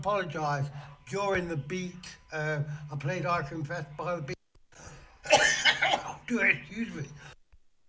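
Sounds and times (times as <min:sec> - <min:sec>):
speech: 0:00.0 - 0:04.4, 0:06.3 - 0:07.3
person coughing: 0:05.2 - 0:06.6.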